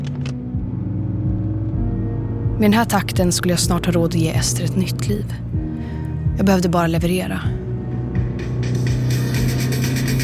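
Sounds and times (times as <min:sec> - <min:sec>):
quick clicks: 0:00.0 - 0:00.4
brand-new car engine rumbling and pulling away: 0:00.0 - 0:05.4, 0:07.2 - 0:10.2
speech: 0:02.6 - 0:05.5, 0:06.3 - 0:07.6.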